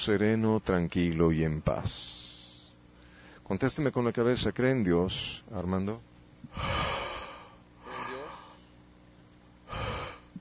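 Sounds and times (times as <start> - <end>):
speech: 0.0 - 2.2, 3.5 - 7.0
heavy forceful breathing: 6.5 - 8.7, 9.7 - 10.3.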